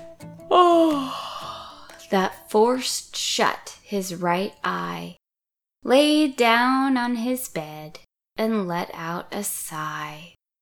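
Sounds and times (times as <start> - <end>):
voice imitating a big yawn: 0.5 - 1.9
speech: 2.1 - 5.2, 5.8 - 10.4.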